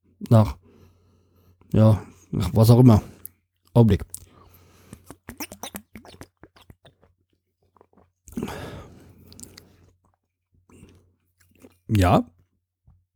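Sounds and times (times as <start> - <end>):
speech: 0.3 - 0.6, 1.7 - 3.1, 3.8 - 4.2, 11.9 - 12.3
chewing ginger-flavoured food: 3.1 - 12.5.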